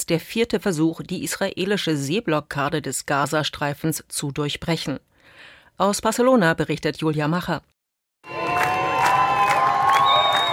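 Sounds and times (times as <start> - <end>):
speech: 0.1 - 7.7
large outdoor crowd roaring and cheering at a harbour: 8.2 - 10.5.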